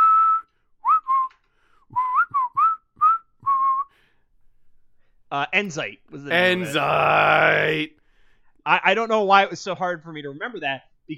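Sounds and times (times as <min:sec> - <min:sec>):
person whistling: 0:00.0 - 0:04.0
speech: 0:05.3 - 0:08.0, 0:08.7 - 0:11.1.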